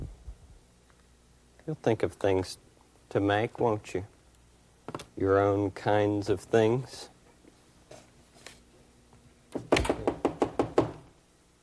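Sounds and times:
speech: 1.7 - 4.1, 4.9 - 7.1
knocking on a back door: 9.6 - 11.1.

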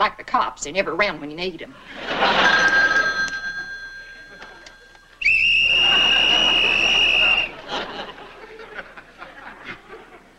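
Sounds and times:
speech: 0.0 - 2.8
telephone ringing tones: 2.2 - 5.2
loud whistle blown into a telephone: 5.2 - 7.6
soft chuckling: 7.5 - 10.3.

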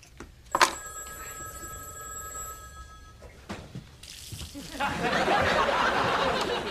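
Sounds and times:
telephone bell ringing: 0.5 - 3.3
laughter: 4.6 - 6.6.

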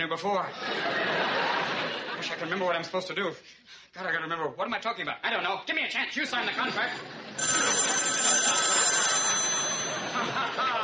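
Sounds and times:
speech: 0.0 - 8.6, 10.2 - 10.8
laughter: 0.5 - 2.6, 6.2 - 10.8
old-fashioned telephone bell ringing: 7.3 - 10.8.

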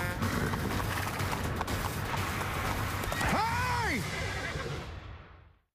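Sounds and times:
hooves of a spooked horse skirting sideways clip-clopping: 0.2 - 3.4
brief rising-and-falling horse whinny: 4.0 - 4.9.

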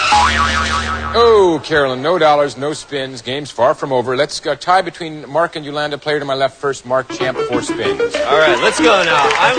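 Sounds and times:
game show whammy sound effect with sliding electronic tones: 0.1 - 1.5
speech: 1.5 - 9.5.

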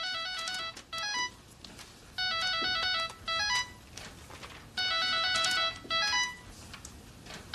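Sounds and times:
cell phone ringtone playing a bright electronic melody: 0.0 - 1.4, 2.2 - 3.9, 4.8 - 6.6.

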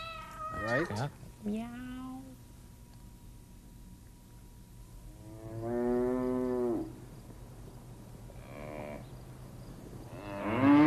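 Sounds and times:
speech: 0.7 - 2.2
cow mooing: 5.3 - 6.9, 10.1 - 10.8.

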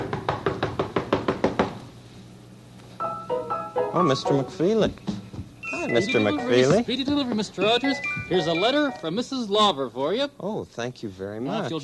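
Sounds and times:
firm knocking on a door: 0.0 - 1.8, 4.9 - 5.5
speech: 3.9 - 5.2, 5.8 - 11.8.

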